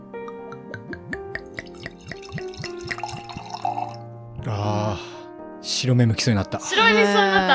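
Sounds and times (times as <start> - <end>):
wine glugging from a bottle into a glass: 0.9 - 4.1
speech: 4.4 - 7.5.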